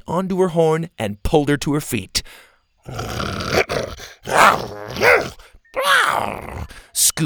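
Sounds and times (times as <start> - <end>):
speech: 0.1 - 3.7, 4.3 - 7.2
voice imitating a dinosaur's irritated growl: 2.8 - 7.1.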